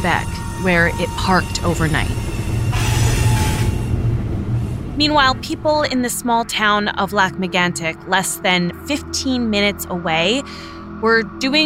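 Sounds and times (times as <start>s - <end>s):
speech: 0.0s - 2.4s, 5.0s - 11.6s
freight train of tank cars carrying crude oil rumbling along winding tracks: 0.0s - 7.3s.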